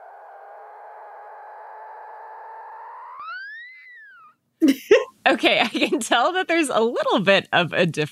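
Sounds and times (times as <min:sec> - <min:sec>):
mother dolphin with calf whistling: 0:00.0 - 0:04.4
speech: 0:04.6 - 0:08.1.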